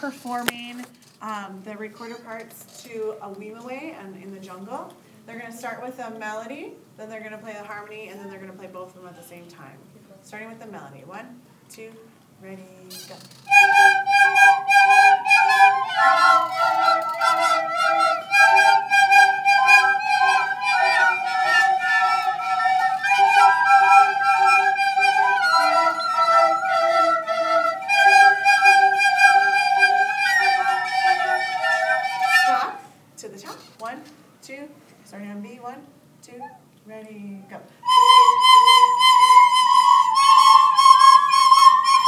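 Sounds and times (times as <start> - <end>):
two recorder parts playing: 13.5 - 32.9, 37.9 - 42.0.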